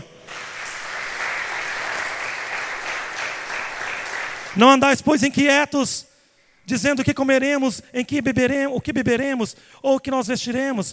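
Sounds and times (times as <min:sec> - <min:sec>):
audience applauding: 0:00.0 - 0:04.8
speech: 0:04.6 - 0:06.1, 0:06.7 - 0:10.9.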